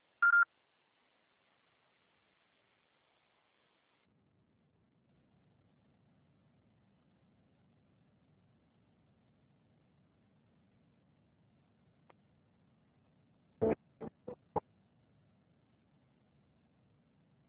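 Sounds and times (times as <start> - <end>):
faint low hiss: 0.0 - 17.4
telephone signal tone beep before call charging: 0.2 - 0.4.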